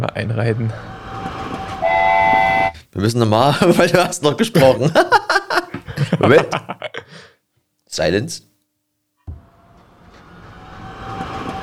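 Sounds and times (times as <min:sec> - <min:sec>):
speech: 0:00.0 - 0:01.0, 0:03.0 - 0:05.2, 0:06.2 - 0:07.3, 0:07.9 - 0:08.5
steam train whistle: 0:01.1 - 0:02.8
laughter: 0:03.5 - 0:07.2.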